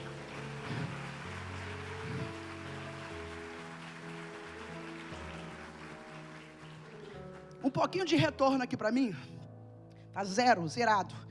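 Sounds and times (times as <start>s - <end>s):
soft sustained musical drone: 0.0s - 7.7s
crowd clapping hands: 0.0s - 8.2s
speech: 7.6s - 9.4s, 10.2s - 11.2s.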